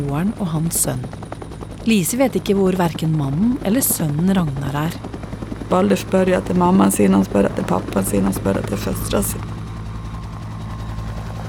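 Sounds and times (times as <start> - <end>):
speech: 0.0 - 9.6
helicopter flying people to a hospital in Takwapa: 0.0 - 11.4.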